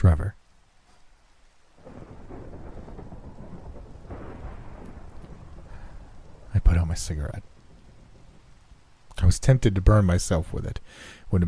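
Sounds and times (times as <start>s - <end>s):
heavy rain downpour: 0.0s - 11.4s
deep thunder rumbling: 1.8s - 10.8s
speech: 7.0s - 7.5s, 9.3s - 11.4s.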